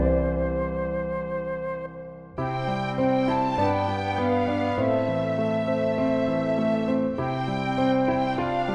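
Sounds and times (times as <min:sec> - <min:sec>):
instrumental sacred piece: 0:00.2 - 0:08.7.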